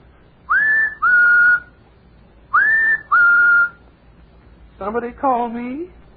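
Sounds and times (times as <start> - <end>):
person whistling an imitation of a bird call: 0.5 - 1.8, 2.5 - 3.8
speech: 4.8 - 6.0.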